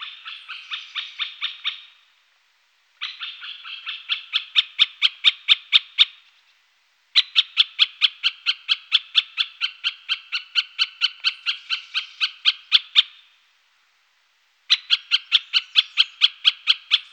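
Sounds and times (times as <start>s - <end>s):
great spotted woodpecker rasping chattering calls: 0.0s - 2.0s, 3.0s - 6.2s, 7.2s - 13.2s, 14.7s - 17.1s.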